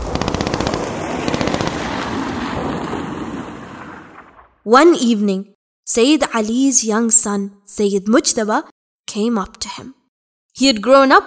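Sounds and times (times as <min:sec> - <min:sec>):
rough rushing noise: 0:00.0 - 0:04.6
rapid crackling bursts of explosions: 0:00.0 - 0:04.7
speech: 0:04.7 - 0:10.0, 0:10.6 - 0:11.2.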